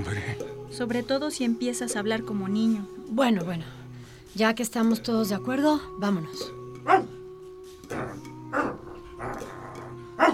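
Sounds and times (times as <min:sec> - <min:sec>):
speech: 0:00.0 - 0:07.1
dog barking: 0:06.9 - 0:07.1, 0:10.2 - 0:10.3.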